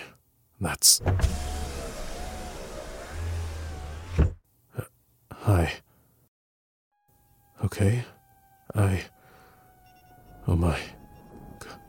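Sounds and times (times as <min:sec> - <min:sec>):
speech: 0:00.6 - 0:01.5, 0:07.8 - 0:08.2, 0:08.8 - 0:09.2, 0:10.5 - 0:11.0
car engine humming: 0:01.0 - 0:04.4, 0:07.0 - 0:11.8.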